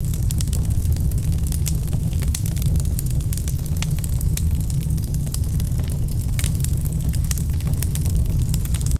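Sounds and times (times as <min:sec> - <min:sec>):
wood fire crackling: 0:00.0 - 0:08.9.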